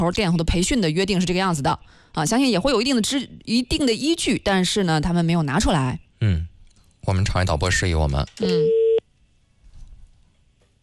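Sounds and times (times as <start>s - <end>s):
speech: 0.0s - 8.8s
telephone ringback tone on an outgoing call to a service number: 8.4s - 9.0s.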